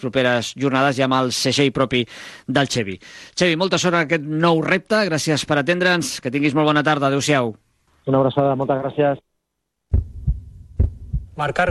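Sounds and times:
speech: 0.0 - 9.2, 11.4 - 11.6
heartbeat sound effect thumps: 9.9 - 11.6.

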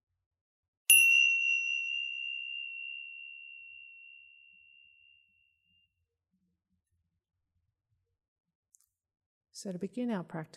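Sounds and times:
meditation chime struck and ringing: 0.9 - 5.9
speech: 9.6 - 10.5.

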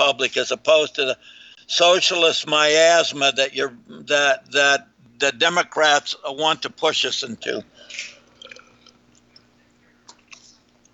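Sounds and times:
speech: 0.1 - 8.1
person sipping lemon water: 7.8 - 9.4.

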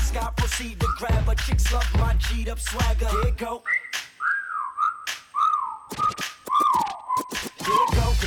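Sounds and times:
speech: 0.2 - 3.8
person whistling gliding phrases: 0.8 - 1.3, 3.0 - 8.1.

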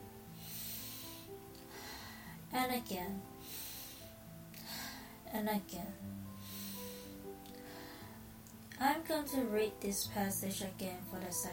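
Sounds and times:
deep slow breath during a guided breathing exercise: 0.3 - 2.4, 3.4 - 5.2, 6.3 - 8.3
speech: 2.5 - 3.6, 5.3 - 6.3, 8.8 - 11.5.

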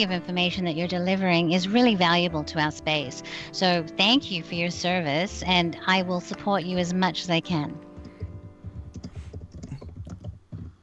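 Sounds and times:
speech: 0.0 - 7.9
typing on a computer keyboard: 8.0 - 10.8.

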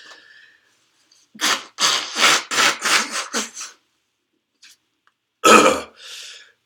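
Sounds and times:
person blowing nose with wet raspy honks: 1.3 - 3.8.

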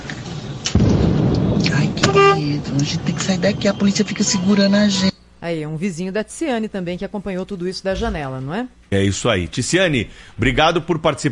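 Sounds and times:
burning bus exploding on Avenida Rebouças: 0.4 - 3.2
speech: 2.4 - 11.3.

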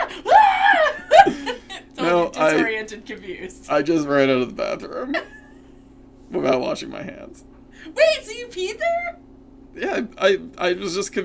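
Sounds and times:
man imitating a scream: 0.0 - 1.3
laughter: 0.0 - 2.6
speech: 2.5 - 5.4, 6.3 - 9.2, 9.8 - 11.2.

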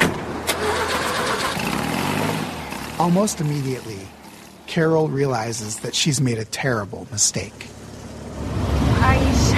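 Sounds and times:
car engine turning over and revving up: 0.1 - 4.4, 7.5 - 9.5
speech: 3.0 - 4.2, 4.7 - 7.8
car interior hum: 7.4 - 9.5.

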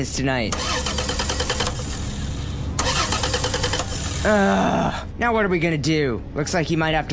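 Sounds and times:
speech: 0.0 - 1.2, 4.2 - 7.1
car engine cranking but failing to start: 0.5 - 4.4.

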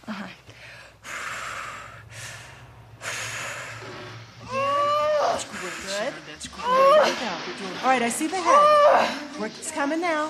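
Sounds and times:
low hum: 0.0 - 6.9
woman in labor breathing heavily: 0.0 - 7.2
speech: 7.4 - 10.2.

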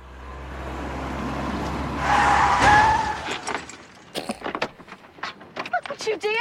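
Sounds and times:
car engine rumbling: 0.0 - 5.5
tires squealing in a sharp skid: 0.9 - 3.8
loud crash of car colliding with another car: 1.6 - 4.1
clattering, crunching bits after the collision: 2.4 - 6.4.

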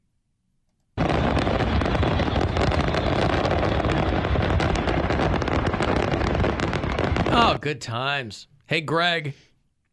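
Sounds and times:
fireworks exploding in rapid bangs and crackles: 1.0 - 7.7
speech: 7.5 - 9.4.

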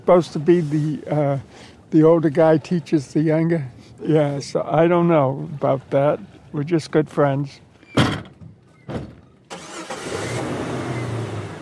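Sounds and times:
speech: 0.1 - 8.2
white Jeep engine starting: 9.5 - 11.5.

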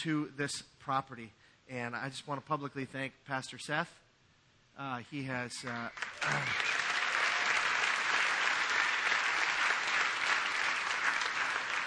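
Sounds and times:
speech: 0.0 - 4.0, 4.8 - 6.7
audience applause: 5.6 - 11.8.

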